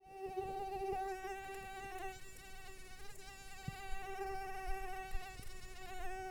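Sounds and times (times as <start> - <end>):
mosquito buzzing in flight: 0.0 - 6.2.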